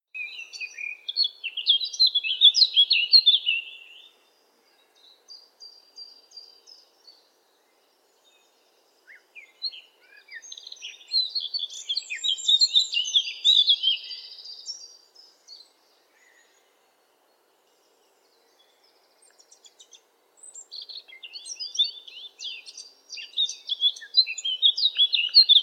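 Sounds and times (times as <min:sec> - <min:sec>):
blackcap singing: 0:00.1 - 0:04.1, 0:08.3 - 0:15.8, 0:18.6 - 0:25.6.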